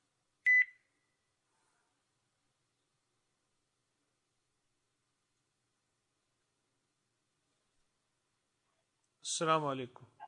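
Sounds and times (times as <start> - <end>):
incoming phone call electronic ringing tone: 0.5 - 0.7
speech: 9.2 - 10.2.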